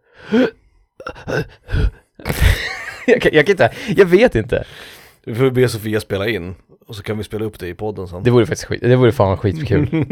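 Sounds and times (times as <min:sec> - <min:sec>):
person imitating heavy labored breathing: 0:00.0 - 0:02.8
speech: 0:00.3 - 0:10.1.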